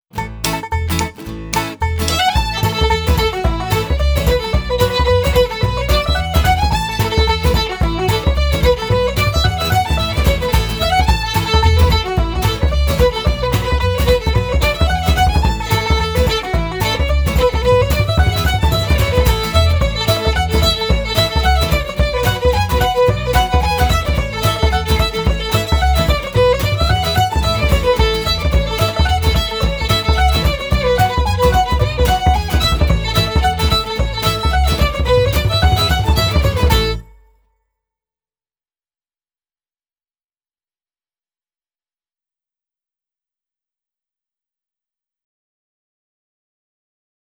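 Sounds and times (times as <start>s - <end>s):
continuous jumping: 0.2s - 37.1s.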